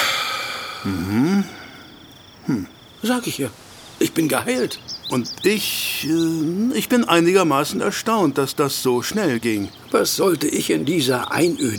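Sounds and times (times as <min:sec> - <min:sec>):
person exhaling softly: 0:00.0 - 0:01.9
low hiss: 0:00.0 - 0:11.7
speech: 0:00.8 - 0:01.6, 0:02.5 - 0:11.7.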